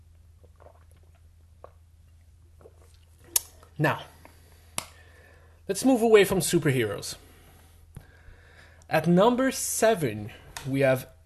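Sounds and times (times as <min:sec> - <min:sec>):
steady low hum: 0:00.0 - 0:11.2
person gulping a swig of water: 0:00.1 - 0:03.8
speech: 0:03.8 - 0:04.2, 0:05.7 - 0:07.2, 0:08.9 - 0:11.2.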